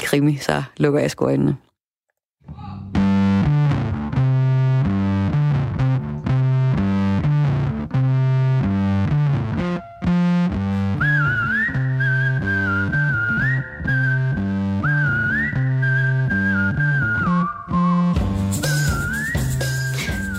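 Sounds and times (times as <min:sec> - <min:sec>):
speech: 0:00.1 - 0:01.6
instrumental backing of chords and bass: 0:02.4 - 0:20.3
whistled melody from a song: 0:09.6 - 0:20.3.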